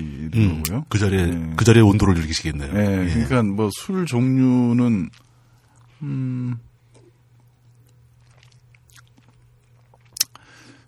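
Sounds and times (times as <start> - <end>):
low steady hum: 0.0 - 10.8
speech: 0.3 - 5.3, 6.0 - 6.7
wet lip smacking: 7.8 - 10.5.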